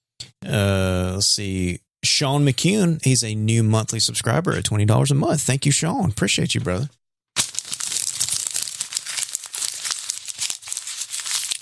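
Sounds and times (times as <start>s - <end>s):
speech: 0.4s - 7.0s
paper or plastic crumpling and crinkling: 7.4s - 11.6s.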